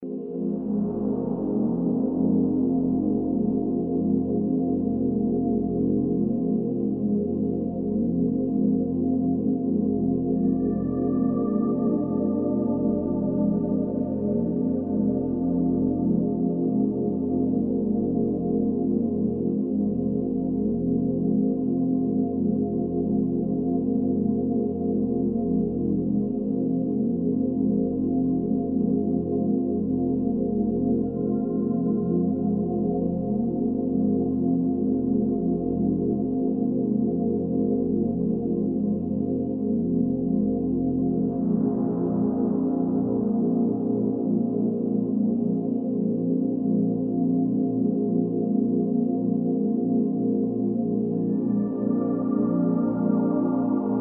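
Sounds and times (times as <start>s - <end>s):
very tranquil warm ambient chords: 0.0s - 53.9s.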